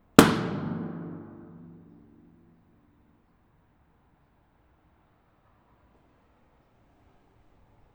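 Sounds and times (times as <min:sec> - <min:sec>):
reverberant breezeway ambience: 0:00.2 - 0:02.6.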